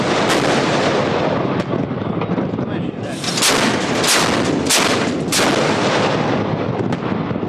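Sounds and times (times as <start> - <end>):
constant roar of wind: 0.0 - 7.4
ship's naval artillery firing at a floating target during naval exercises: 0.0 - 7.4
ship engine noise: 3.1 - 5.4.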